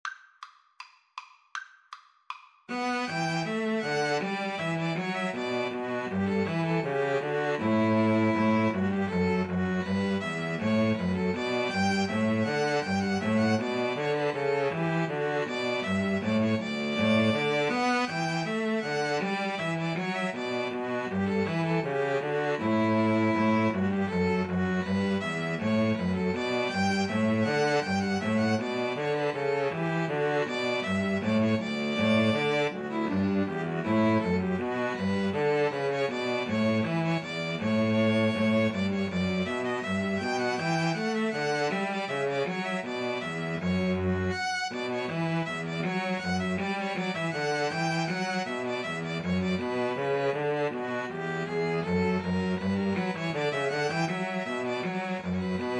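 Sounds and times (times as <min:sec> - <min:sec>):
string trio playing a bourree: 0:02.7 - 0:55.7.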